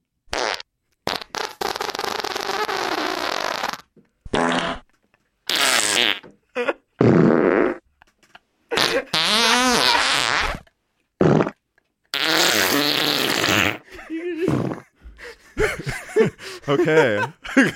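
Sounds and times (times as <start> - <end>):
recorded fart sounds played as a track: 0.3 - 6.4, 7.0 - 15.0
laughter: 13.8 - 17.7
speech: 16.7 - 17.7.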